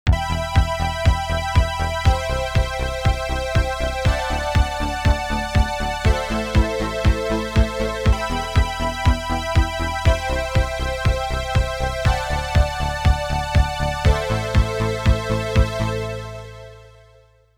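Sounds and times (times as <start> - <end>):
synthwave music: 0.1 - 17.4.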